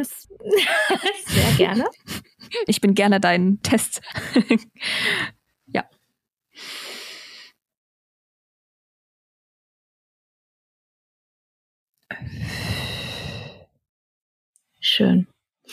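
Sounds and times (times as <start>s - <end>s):
speech: 0.0s - 5.9s, 14.9s - 15.7s
laughter: 0.4s - 2.7s, 4.0s - 4.8s
deep breath in through the nose: 6.6s - 7.6s, 12.3s - 13.7s.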